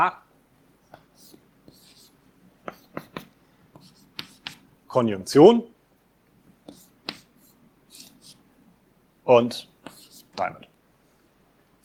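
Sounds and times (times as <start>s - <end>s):
speech: 0.0s - 0.2s, 4.9s - 5.7s, 9.3s - 9.7s, 10.4s - 10.7s
pen scratching on paper writing down a grammar by hand: 1.0s - 4.7s, 6.5s - 8.4s, 9.6s - 10.6s
pen taps: 2.7s - 4.6s, 6.6s - 7.3s.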